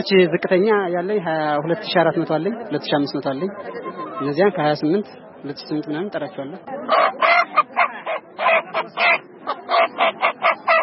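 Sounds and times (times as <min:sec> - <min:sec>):
speech: 0:00.0 - 0:07.5, 0:08.5 - 0:10.5
chickens squawking at a market: 0:06.8 - 0:10.8.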